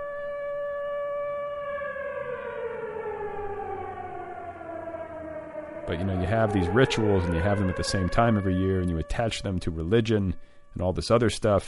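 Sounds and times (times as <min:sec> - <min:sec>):
civil defense siren winding down: 0:00.0 - 0:10.7
speech: 0:05.9 - 0:11.6.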